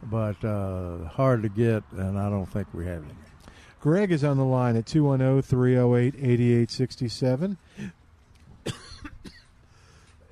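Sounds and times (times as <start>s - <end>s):
speech: 0.1s - 8.0s
person coughing: 8.6s - 9.5s.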